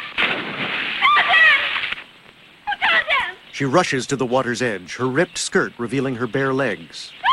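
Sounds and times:
splash of a man diving into a river: 0.1 - 2.0
speech: 3.6 - 7.2.

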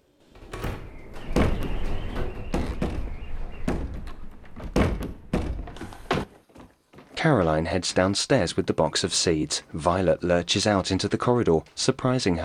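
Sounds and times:
door behind attic shelves shaking and rattling: 0.3 - 6.3
heavy thumps and knocks on a door: 0.4 - 7.2
speech: 7.2 - 12.4.

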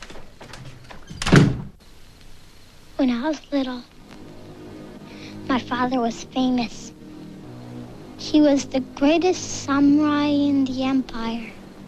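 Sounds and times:
double doors closing as someone leaves: 0.0 - 1.8
speech: 3.0 - 4.0, 5.5 - 7.0, 8.2 - 11.6.

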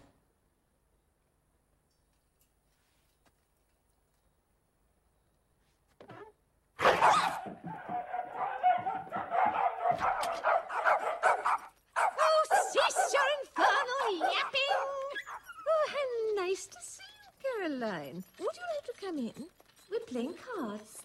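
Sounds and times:
small dogs whining: 6.1 - 20.7
several small dogs barking at a door: 6.8 - 17.4
speech: 19.1 - 19.5.

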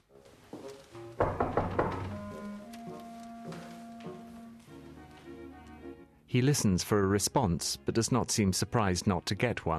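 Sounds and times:
soft sustained music: 0.0 - 9.7
solid knocks on a door with dull wooden thuds: 1.2 - 2.3
speech: 6.3 - 9.7.

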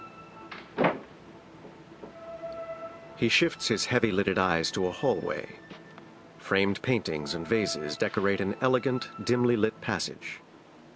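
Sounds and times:
front door into a foyer opening and closing: 0.4 - 2.6
speech: 3.2 - 5.6, 6.5 - 10.4.

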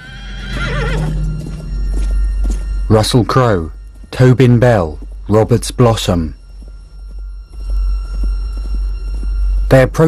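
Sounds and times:
horse whinnying in a high-pitched neigh: 0.0 - 1.2
hooves clip-clopping on dry grassy ground: 0.0 - 10.0
speech: 2.9 - 6.4, 9.7 - 10.0.

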